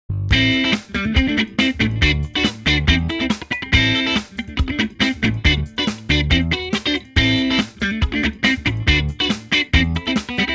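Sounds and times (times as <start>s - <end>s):
clean amp simulator tone: 0.3s - 10.5s.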